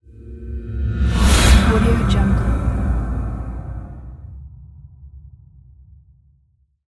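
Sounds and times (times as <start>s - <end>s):
horror whoosh: 0.1s - 4.6s.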